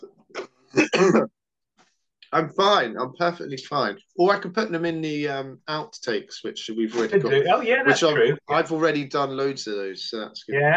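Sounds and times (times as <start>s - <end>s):
person clearing throat: 0.7s - 1.3s
speech: 0.7s - 1.4s, 2.3s - 10.7s
person coughing: 0.8s - 1.3s.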